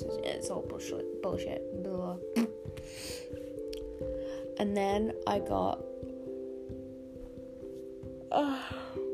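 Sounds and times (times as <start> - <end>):
speech: 0.1 - 3.4, 4.0 - 5.9, 8.3 - 8.9
person yawning: 8.3 - 9.0.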